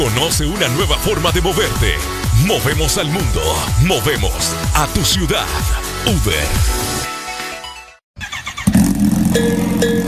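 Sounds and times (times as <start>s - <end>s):
speech: 0.0s - 6.8s, 9.4s - 9.8s
motorcycle engine idling, starting and revving: 8.6s - 10.0s.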